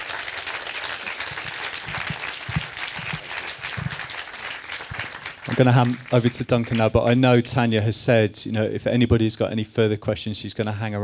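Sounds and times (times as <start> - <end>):
audience applause: 0.0 - 7.2
speech: 5.6 - 11.0.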